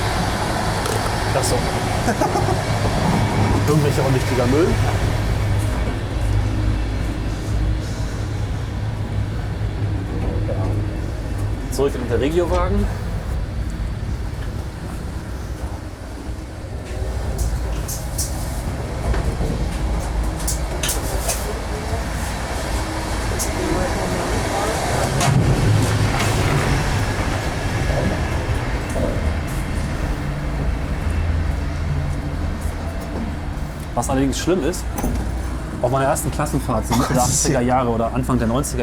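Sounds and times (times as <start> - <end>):
moving train rumble inside a regional railway carriage: 0.0 - 38.8
speech: 1.3 - 5.0, 11.8 - 13.0, 34.0 - 35.2, 35.8 - 38.8
laughter: 1.5 - 4.4.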